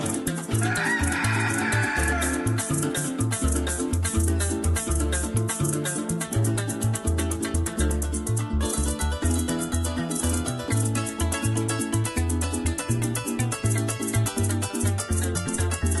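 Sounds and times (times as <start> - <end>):
bass-heavy band groove with regular percussion: 0.0 - 15.9
rooster crowing: 0.6 - 2.6.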